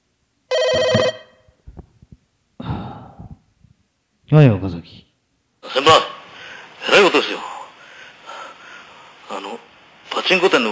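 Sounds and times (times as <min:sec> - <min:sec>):
telephone bell ringing: 0:00.5 - 0:01.5
speech: 0:04.3 - 0:05.1, 0:05.8 - 0:06.1, 0:07.0 - 0:07.5, 0:10.3 - 0:10.7.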